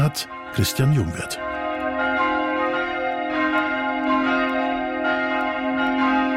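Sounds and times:
church bells rung by hand with ropes for midday ringing in Utting: 0.0s - 6.3s
speech: 0.1s - 1.5s.

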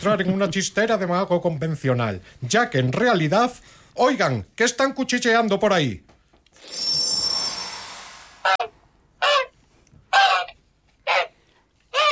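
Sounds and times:
speech: 0.0s - 6.9s
shimmering hissing swell: 6.6s - 8.6s
goose honking: 8.5s - 9.5s, 10.1s - 12.0s.

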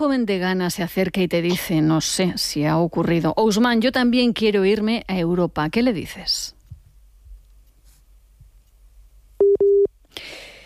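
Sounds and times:
speech: 0.0s - 6.6s
telephone busy tone after a call cut off: 9.4s - 9.9s.

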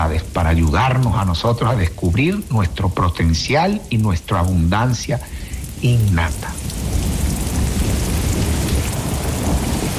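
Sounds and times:
speech: 0.0s - 6.8s
heavy rain pouring: 0.0s - 9.9s
continuous deep rumble of thunder: 6.4s - 9.9s.

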